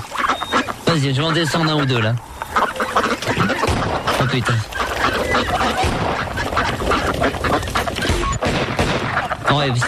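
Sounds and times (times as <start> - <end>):
many ducks quacking at a pond: 0.0 - 9.8
speech: 0.9 - 7.8, 9.5 - 9.8.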